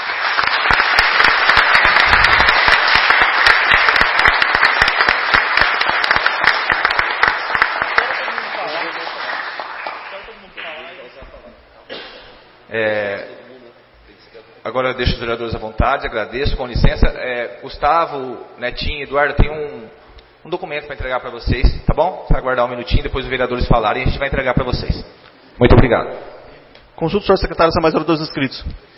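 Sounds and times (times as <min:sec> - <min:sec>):
audience applause in a city council chamber: 0:00.0 - 0:11.2
speech: 0:14.8 - 0:26.3, 0:27.0 - 0:28.9.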